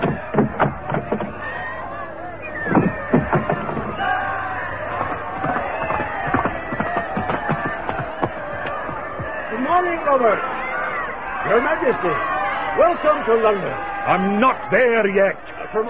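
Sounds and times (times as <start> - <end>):
people clapping in a crowd: 0.0 - 2.0, 2.6 - 15.8
dense crowd calling out and cheering: 0.0 - 15.8
speech: 11.8 - 15.8.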